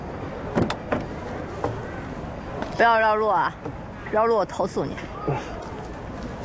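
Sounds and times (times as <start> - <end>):
car door latch and handle clicking as a passenger gets in: 0.5 - 1.8
speech: 2.8 - 5.7.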